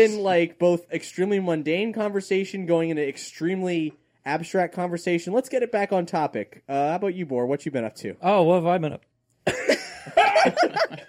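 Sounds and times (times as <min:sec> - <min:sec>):
speech: 0:00.0 - 0:11.0
harsh raspy coughing fit: 0:09.4 - 0:10.6
laughter: 0:09.5 - 0:11.0.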